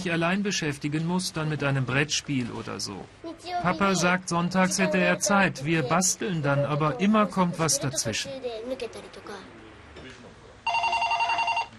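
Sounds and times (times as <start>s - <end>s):
speech: 0.0s - 9.4s
telephone ringing in a loud trilling burst: 10.6s - 11.7s.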